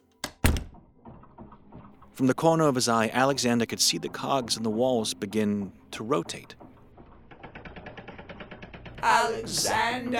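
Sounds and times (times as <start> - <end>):
door swinging shut with a click and a thud: 0.2 - 10.1
speech: 2.2 - 6.6, 9.3 - 10.1.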